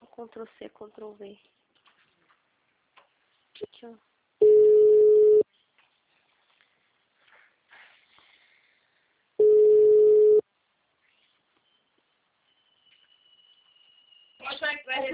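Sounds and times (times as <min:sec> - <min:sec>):
speech: 0:00.2 - 0:01.6, 0:03.8 - 0:04.1
telephone ringing with long electronic tones: 0:04.4 - 0:05.4, 0:09.4 - 0:10.4.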